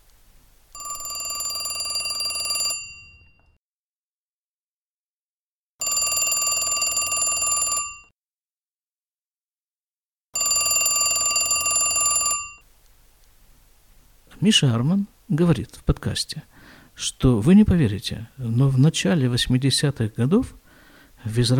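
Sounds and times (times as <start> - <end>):
old telephone bell ringing: 0.7 - 3.6, 5.8 - 8.1, 10.4 - 12.6
speech: 14.4 - 20.6, 21.2 - 21.5.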